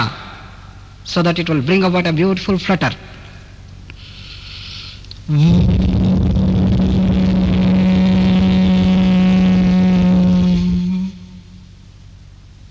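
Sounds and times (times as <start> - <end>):
speech: 0.0 - 0.2, 1.0 - 3.2, 5.3 - 5.6
human voice chanting a bee-like hum: 5.3 - 11.8.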